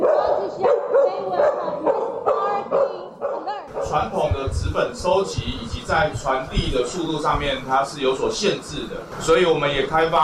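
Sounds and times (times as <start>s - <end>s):
search-and-rescue dog barking: 0.0s - 4.1s
speech: 3.9s - 10.2s.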